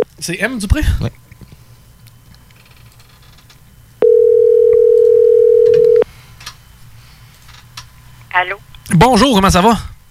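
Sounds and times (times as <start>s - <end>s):
speech: 0.2s - 1.2s, 8.4s - 9.9s
telephone ringback tone while placing a call: 4.0s - 6.0s.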